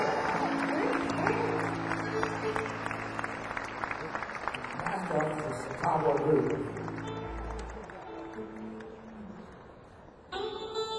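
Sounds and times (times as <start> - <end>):
audience applause for a blues musician at a live show: 0.0 - 9.8.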